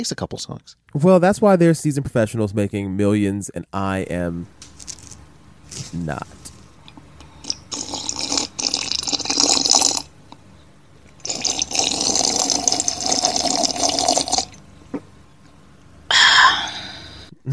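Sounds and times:
speech: 0.0 - 4.6, 5.9 - 6.4
person gulping and sipping water: 6.9 - 10.4, 11.1 - 15.1
sharp breathy exhale: 16.1 - 17.3.

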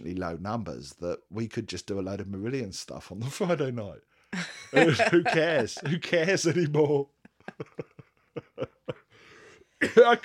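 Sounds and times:
speech: 0.2 - 7.9, 9.8 - 10.2
laughter: 4.4 - 9.2
rasping breathy inhale: 9.1 - 9.8
person coughing: 9.8 - 10.2.

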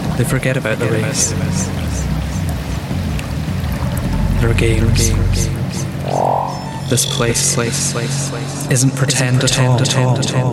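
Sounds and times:
speech: 0.2 - 2.0, 4.4 - 6.3, 6.9 - 10.5
waterfall rushing into a river: 1.0 - 7.6.

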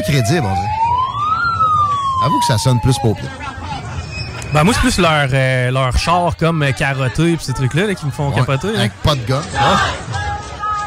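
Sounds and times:
speech: 0.0 - 0.9, 2.2 - 3.6, 4.5 - 10.2
English police car siren wailing: 0.0 - 3.9.

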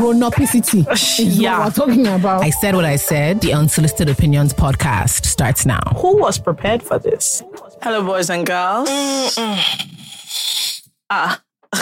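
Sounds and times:
speech: 0.0 - 11.8
person yawning: 8.8 - 11.8.

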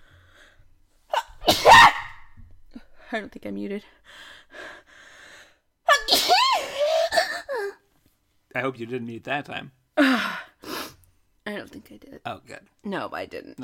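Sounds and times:
human sneezing: 1.1 - 2.2, 5.9 - 7.1
speech: 3.1 - 4.3, 8.5 - 10.4, 11.5 - 13.6.

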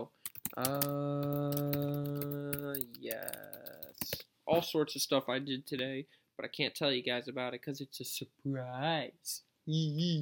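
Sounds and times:
speech: 0.0 - 1.8, 4.1 - 10.1
typing on a computer keyboard: 0.2 - 4.2.

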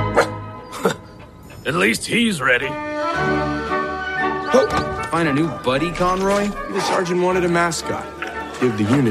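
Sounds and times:
dog barking: 0.1 - 0.4
speech: 1.7 - 3.5, 4.5 - 9.0.

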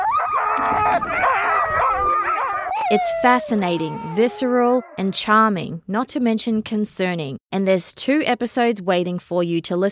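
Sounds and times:
hungry sled dog howling and whining: 0.0 - 5.2
speech: 0.9 - 9.9.

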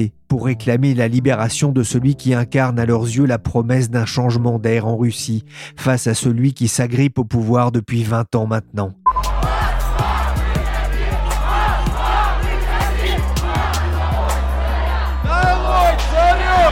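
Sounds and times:
speech: 0.0 - 9.0
large protest crowd chanting in unison: 9.1 - 16.7
protest crowd yelling: 9.2 - 16.7.

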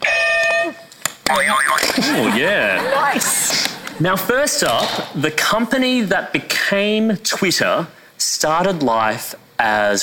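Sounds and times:
loud electronic quiz buzzer being tested: 1.3 - 2.0
laughter: 1.3 - 4.4
speech: 1.3 - 10.0.

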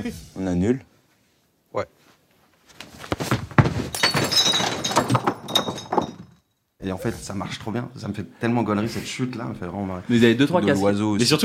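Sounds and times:
speech: 0.0 - 0.9, 1.7 - 2.0, 6.8 - 11.4
ball slamming into a stack of cans: 3.1 - 6.4
cans clattering and tumbling with tinny clinks: 3.9 - 6.4.

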